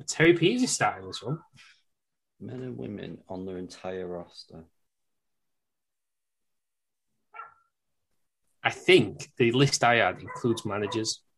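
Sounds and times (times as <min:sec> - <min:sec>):
speech: 0:00.0 - 0:01.7, 0:02.4 - 0:04.8, 0:08.6 - 0:11.2
dog bark: 0:07.3 - 0:07.7, 0:10.3 - 0:11.1.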